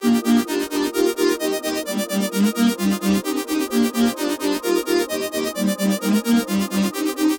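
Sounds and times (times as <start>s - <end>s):
masala synth loop in D major: 0.0s - 7.3s.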